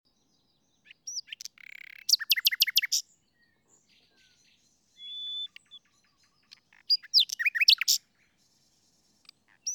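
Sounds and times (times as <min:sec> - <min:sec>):
common nightingale Luscinia megarhynchos singing: 0:00.1 - 0:09.7.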